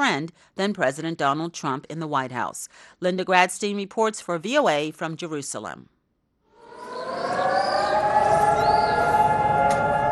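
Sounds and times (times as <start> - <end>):
speech: 0.1 - 5.9
civil defense siren wailing for Memorial Day in Israel: 6.6 - 10.0.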